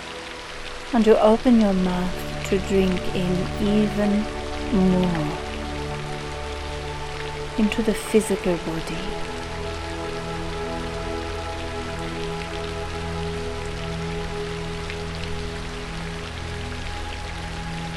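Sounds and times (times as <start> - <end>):
steady rain pattering on a surface: 0.0 - 17.9
sustained low humming drone: 0.0 - 17.9
speech: 0.9 - 5.4, 7.6 - 9.4.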